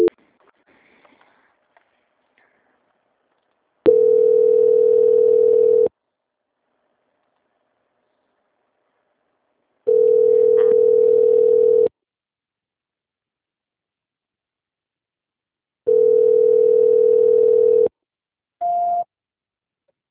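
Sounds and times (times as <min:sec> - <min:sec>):
telephone call transfer tone: 0:03.9 - 0:05.9, 0:09.9 - 0:11.9, 0:15.9 - 0:17.9.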